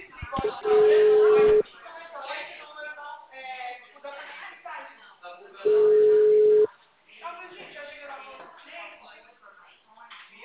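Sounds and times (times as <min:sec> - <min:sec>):
people talking: 0:00.0 - 0:10.4
telephone line tone after a dropped call: 0:00.4 - 0:01.6, 0:05.6 - 0:06.7.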